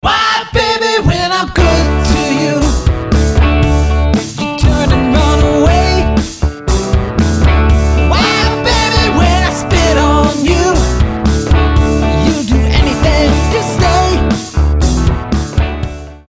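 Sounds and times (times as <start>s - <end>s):
person singing rock vocal: 0.0s - 2.9s, 4.2s - 6.3s, 8.0s - 11.0s, 12.0s - 14.6s
simple rock guitar: 1.5s - 16.3s.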